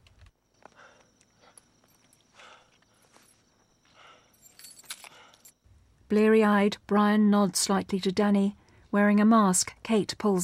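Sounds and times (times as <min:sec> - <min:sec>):
car keys tossed and jangling: 0:04.3 - 0:05.6
speech: 0:06.1 - 0:10.4.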